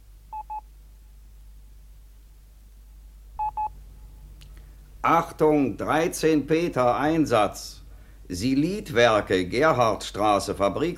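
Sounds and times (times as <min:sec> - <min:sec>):
low steady hum: 0:00.0 - 0:10.9
touch-tone telephone dialing beeps: 0:03.4 - 0:03.7
speech: 0:05.0 - 0:10.9.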